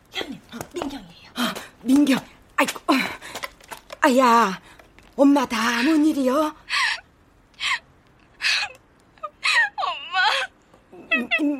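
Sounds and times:
speech: 1.8 - 3.0, 4.0 - 4.6, 5.2 - 6.6
person crying on a phone call: 8.4 - 11.5.

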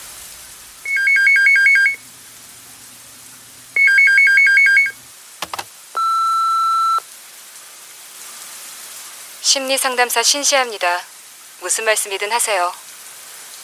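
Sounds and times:
long steady answering machine beep: 0.9 - 2.0, 3.8 - 5.0, 6.0 - 7.0
telephone ringing in warbling electronic bursts: 0.9 - 2.0, 3.8 - 7.0
answering machine click: 5.4 - 5.7
speech: 9.5 - 12.8.

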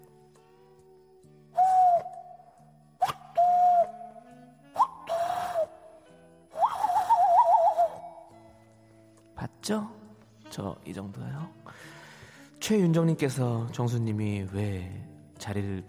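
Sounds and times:
person imitating a cuckoo's call: 3.0 - 5.8, 6.5 - 8.3
speech: 9.7 - 11.9, 12.7 - 15.8.

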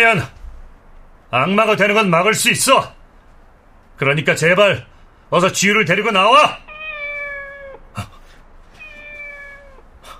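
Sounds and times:
speech: 0.0 - 0.4, 1.3 - 3.0, 4.0 - 6.6
cat meowing in a factory: 6.5 - 7.9, 8.7 - 9.9.

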